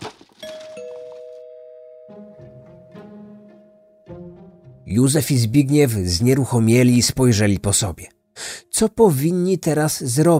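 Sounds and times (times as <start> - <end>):
loud doorbell ringing: 0.4 - 5.7
speech: 4.9 - 8.2, 8.8 - 10.3.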